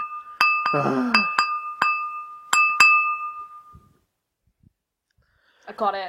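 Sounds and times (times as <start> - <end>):
glass being tapped: 0.0 - 3.9.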